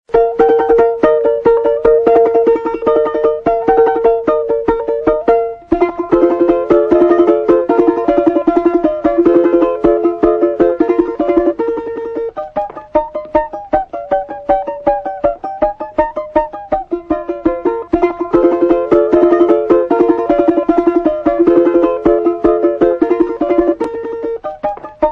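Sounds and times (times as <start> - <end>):
balalaika playing a folk tune: 0.1 - 25.1.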